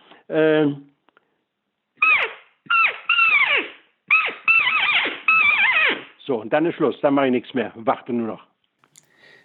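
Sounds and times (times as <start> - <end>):
speech: 0.3 - 0.9, 6.3 - 8.5
hunting call imitating roe deer chase squeaks and fear cries: 2.0 - 6.2.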